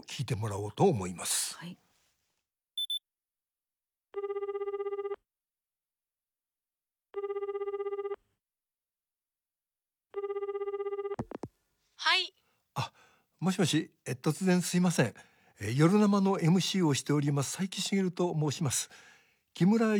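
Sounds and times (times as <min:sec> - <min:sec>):
speech: 0:00.0 - 0:01.9, 0:12.0 - 0:19.9
short high beep: 0:02.8 - 0:03.0
telephone ringing on a phone call: 0:02.8 - 0:03.0, 0:04.2 - 0:05.2, 0:07.2 - 0:08.2, 0:10.2 - 0:11.2.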